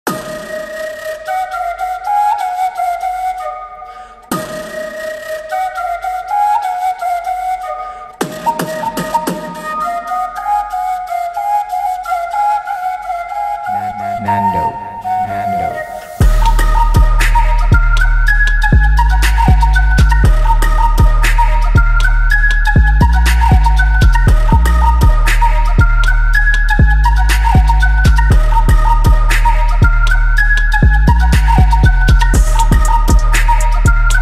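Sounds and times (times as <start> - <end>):
flute trap remix: 0.1 - 34.1.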